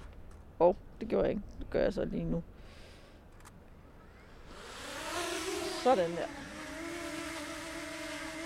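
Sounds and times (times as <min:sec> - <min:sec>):
speech: 0:00.6 - 0:02.8, 0:05.8 - 0:06.4
small drone motors buzzing: 0:03.9 - 0:08.4.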